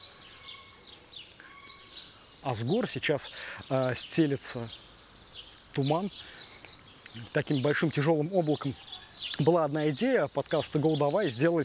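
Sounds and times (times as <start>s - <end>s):
birds singing in the mountains: 0.0s - 11.6s
speech: 2.4s - 4.8s, 5.8s - 6.4s, 7.1s - 11.6s.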